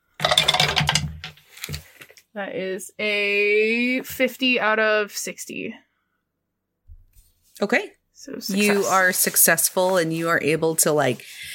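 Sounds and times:
dice rattling and clattering across a hard surface: 0.2 - 1.1
speech: 2.4 - 5.9, 7.6 - 11.5.

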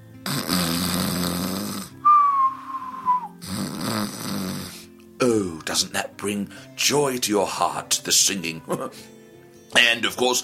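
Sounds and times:
person imitating snoring of sleeping parents: 0.2 - 4.9
speech: 5.2 - 10.4.

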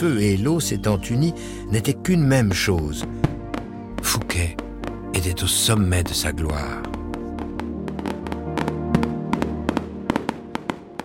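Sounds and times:
speech: 0.0 - 3.3, 4.0 - 4.6, 5.2 - 7.0
fireworks, firecrackers and rockets going off: 3.0 - 5.2, 6.5 - 11.0.

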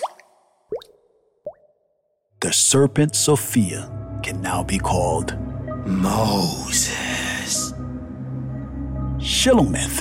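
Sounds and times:
liquid drips plopping: 0.0 - 1.8
speech: 2.5 - 7.8, 9.2 - 9.9.

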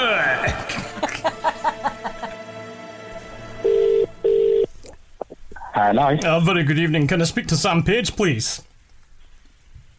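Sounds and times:
laughter: 0.1 - 2.5
telephone dialing beeps: 3.7 - 4.7
speech: 5.8 - 8.7.

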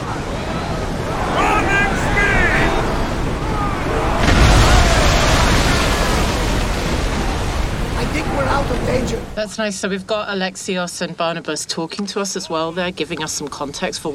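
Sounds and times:
people shouting: 0.0 - 6.4
roar of the sea: 0.0 - 9.4
rushing water: 0.0 - 9.4
video game ship being rammed and cleaved, wood and sails splintering: 0.1 - 9.4
grinding destruction: 3.1 - 8.9
speech: 9.4 - 14.1.

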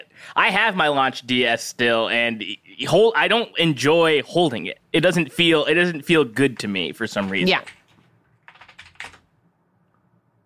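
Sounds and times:
speech: 0.2 - 7.8
typing on a computer keyboard: 7.6 - 9.3.

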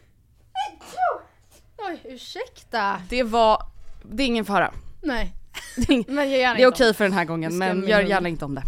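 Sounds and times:
person sneezing: 0.6 - 1.7
speech: 2.0 - 8.6.

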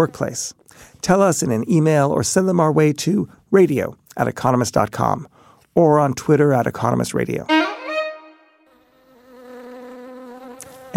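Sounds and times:
speech: 0.0 - 7.7
angry bee buzzing: 8.7 - 10.9.

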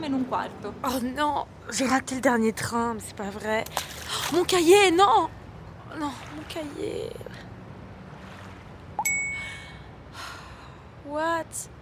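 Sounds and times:
speech: 0.0 - 7.5, 11.1 - 11.7
phone notification reminder chime: 9.0 - 9.6.

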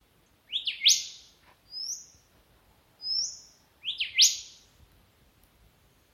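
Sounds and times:
golden whistler rising whistled phrases: 0.5 - 2.2, 3.0 - 4.6.

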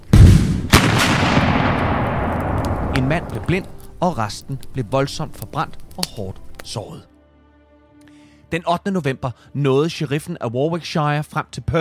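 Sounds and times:
damp gunpowder exploding near a campfire: 0.0 - 3.8
speech: 3.0 - 7.1, 8.5 - 11.7.

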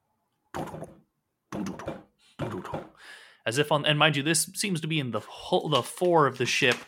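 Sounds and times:
rapid knocking on wood: 0.6 - 3.0
speech: 2.6 - 6.8.

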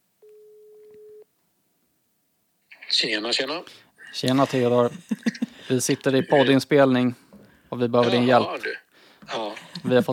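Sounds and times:
telephone ringing tone of an outgoing phone call: 0.3 - 1.2
speech: 3.0 - 10.1.

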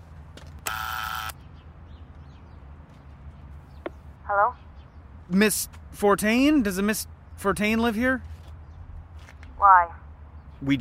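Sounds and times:
low street-like rumble: 0.0 - 10.8
apartment building electric door buzzer: 0.6 - 1.4
speech: 4.3 - 4.7, 5.3 - 8.3, 9.6 - 10.0, 10.6 - 10.8.

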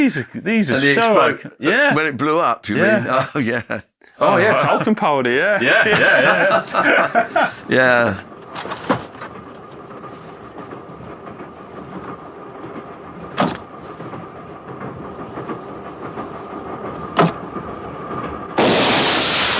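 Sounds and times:
speech: 0.0 - 8.8
train rattling: 0.0 - 19.5
laughter: 1.7 - 8.2
hissing rush: 5.6 - 19.5.

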